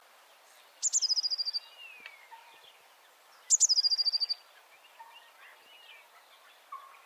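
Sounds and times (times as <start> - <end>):
faint bird chirps: 0.4 - 7.0
Eurasian blue tit Cyanistes caeruleus giving high rapid trilled calls: 0.8 - 2.2, 3.5 - 4.4.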